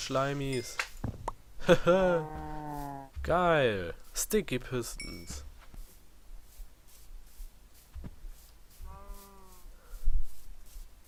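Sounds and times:
faint steady hiss: 0.0s - 11.0s
speech: 0.1s - 2.5s, 3.2s - 5.5s
single sheep bleating: 8.8s - 9.7s.

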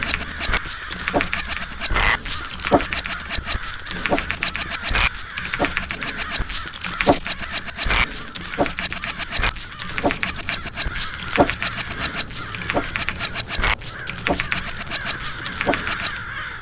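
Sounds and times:
sharp clicks in video game battle: 0.0s - 16.6s
video game zombie crows cawing in battle: 0.0s - 16.6s.

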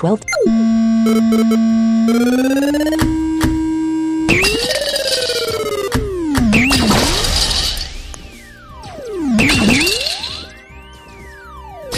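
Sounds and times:
synthetic video-game tones as a ball hits blocks: 0.2s - 7.1s, 9.0s - 10.4s
video game noisy crash bursts: 0.4s - 10.5s.

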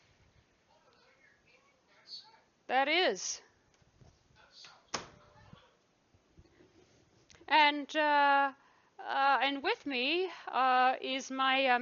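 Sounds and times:
speech: 2.7s - 3.5s, 7.5s - 11.8s
door swinging shut with a sharp thud and rattle: 4.9s - 5.2s.

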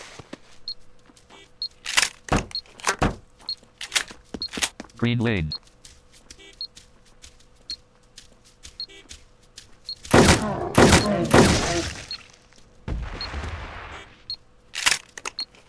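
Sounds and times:
video game tracker beeping: 0.6s - 5.6s, 6.4s - 6.8s, 7.7s - 7.9s, 8.7s - 9.1s, 9.8s - 12.3s, 13.9s - 14.4s, 15.2s - 15.6s
speech: 5.0s - 5.6s.

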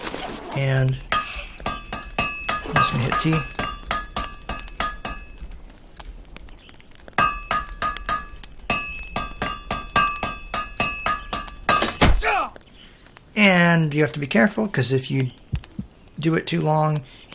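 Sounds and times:
speech: 0.6s - 1.1s, 2.9s - 3.6s, 13.4s - 15.5s, 16.2s - 17.2s
hammer striking metal to forge a blade in a video game: 1.1s - 5.4s, 7.2s - 12.1s.

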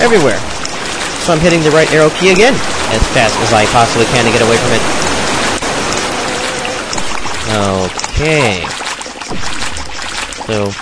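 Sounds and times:
speech: 0.0s - 0.6s, 1.3s - 5.1s, 7.5s - 9.6s, 10.5s - 10.8s
rushing waterfall in a video game: 0.0s - 8.7s.

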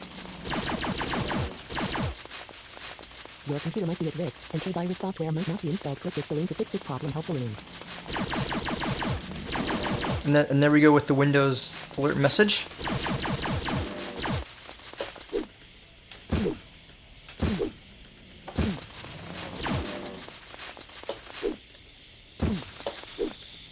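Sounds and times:
snake hissing: 0.0s - 10.4s, 11.6s - 15.5s, 16.3s - 16.7s, 17.4s - 17.8s, 18.5s - 23.6s
speech: 3.5s - 8.7s, 10.3s - 13.1s.

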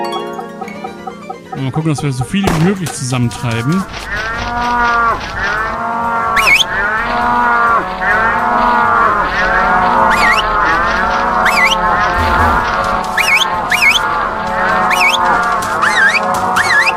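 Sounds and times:
speech: 1.6s - 5.6s
herd of cows mooing in a video game: 3.3s - 16.9s
high-pitched squeaks: 10.0s - 10.6s, 11.4s - 14.1s, 14.9s - 15.2s.

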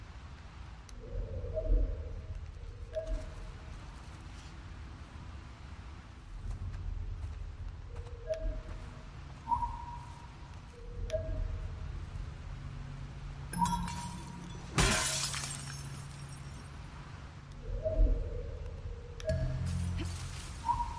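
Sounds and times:
low hum: 0.0s - 20.9s
glass shattering: 13.6s - 16.6s.

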